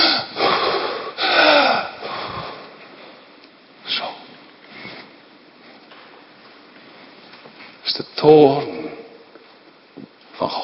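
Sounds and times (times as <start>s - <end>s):
human voice imitating the snorting of an enraged predator: 0.0s - 2.4s
speech: 8.2s - 8.7s.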